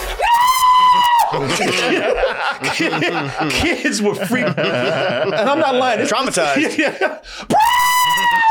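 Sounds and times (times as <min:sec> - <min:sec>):
loud high-pitched scream: 0:00.1 - 0:01.6, 0:07.5 - 0:08.4
laughter: 0:01.3 - 0:07.3
speech: 0:01.4 - 0:07.9.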